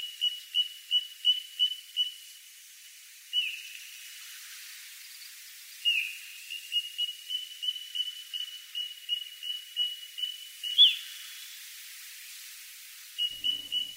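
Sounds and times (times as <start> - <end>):
faint hiss: 0.0 - 13.9
Little Ringed Plover whistled calls: 13.3 - 13.9.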